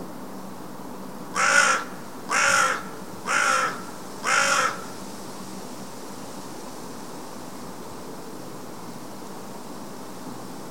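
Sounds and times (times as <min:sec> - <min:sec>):
Carrion crow cawing, Corvus corone: 0:01.3 - 0:05.0.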